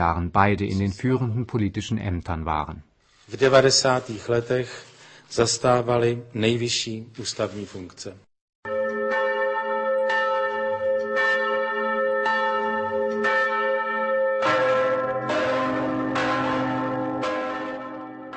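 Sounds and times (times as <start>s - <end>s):
speech: 0.0s - 8.3s
church bells tolling: 8.6s - 18.3s.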